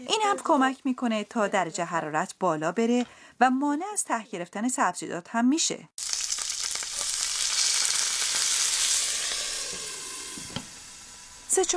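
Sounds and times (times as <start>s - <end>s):
speech: 0.1s - 6.2s, 11.6s - 11.7s
water sizzling on stuffed vegetables in a hot pot: 6.0s - 11.7s.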